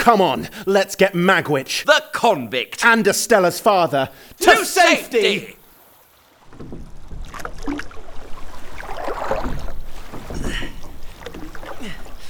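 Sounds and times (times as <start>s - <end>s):
speech: 0.0s - 5.6s
oars of a rowing boat splashing through water: 6.2s - 12.2s.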